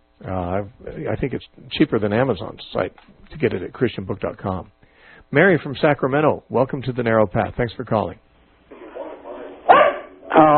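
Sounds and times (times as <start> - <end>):
speech: 0.2 - 8.2
dog barking during a telephone call: 8.7 - 10.5.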